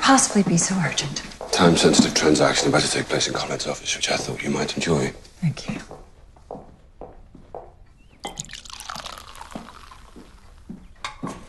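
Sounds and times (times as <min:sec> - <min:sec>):
speech: 0:00.1 - 0:06.0
soft drips and taps: 0:07.5 - 0:11.4
drink poured into a glass: 0:08.2 - 0:11.3.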